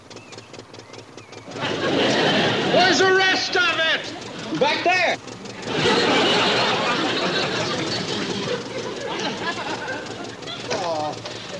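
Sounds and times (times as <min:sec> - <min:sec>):
tractor engine pulling a plow: 0:00.0 - 0:11.5
laughter: 0:01.5 - 0:11.5.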